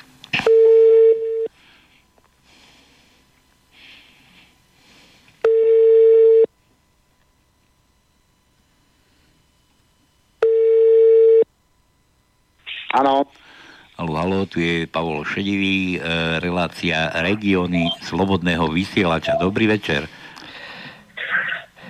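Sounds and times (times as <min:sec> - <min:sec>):
telephone ringing tone while calling a race organiser: 0:00.4 - 0:01.5, 0:05.4 - 0:06.5, 0:10.4 - 0:11.5
speech: 0:13.0 - 0:13.4, 0:14.0 - 0:20.2.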